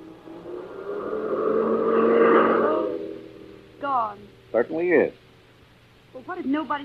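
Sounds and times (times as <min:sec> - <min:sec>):
car driving past: 0:00.0 - 0:03.8
speech: 0:04.6 - 0:05.2, 0:06.3 - 0:06.8.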